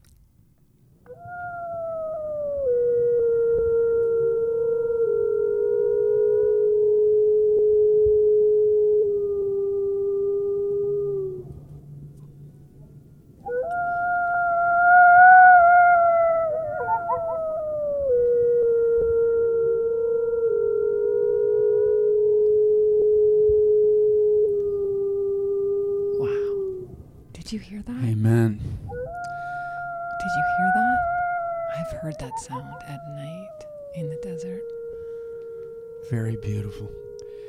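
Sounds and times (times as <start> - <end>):
Mexican gray wolf howling: 1.1 - 12.2, 13.4 - 27.2, 28.9 - 37.4
Mexican gray wolf yipping: 13.5 - 17.8, 28.9 - 35.1.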